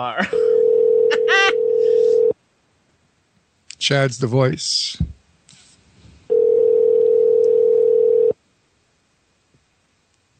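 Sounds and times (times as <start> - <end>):
speech: 0.0 - 0.6, 3.8 - 5.2
telephone dial tone while dialing a call: 0.5 - 2.3, 6.3 - 8.4.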